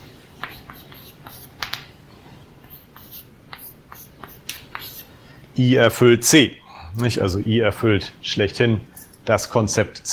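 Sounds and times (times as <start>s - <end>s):
low steady hum: 0.0s - 10.1s
writing on a board: 0.4s - 1.8s, 2.6s - 5.2s
speech: 5.6s - 10.1s.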